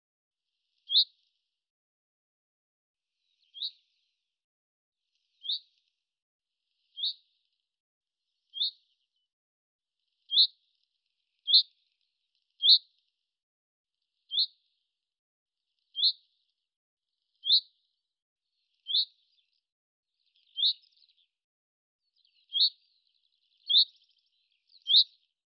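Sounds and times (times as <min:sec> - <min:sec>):
Common chaffinch calling with high chip-like notes: 0:00.9 - 0:01.2, 0:03.5 - 0:03.8, 0:05.4 - 0:05.7, 0:07.0 - 0:07.2, 0:08.6 - 0:08.8, 0:10.3 - 0:10.6, 0:12.6 - 0:12.9, 0:14.3 - 0:14.5, 0:16.0 - 0:16.2, 0:17.4 - 0:17.7, 0:18.9 - 0:19.2, 0:20.4 - 0:21.2, 0:22.3 - 0:22.8, 0:23.6 - 0:24.0, 0:24.7 - 0:25.2.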